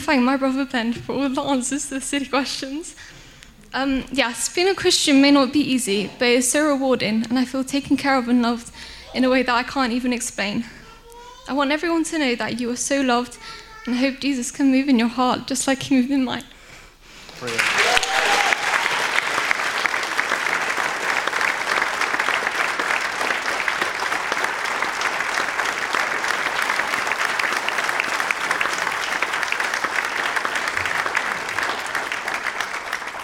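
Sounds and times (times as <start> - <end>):
speech: 0.1 - 10.8, 11.5 - 16.5, 17.4 - 17.8
large crowd applauding loudly: 17.3 - 33.2.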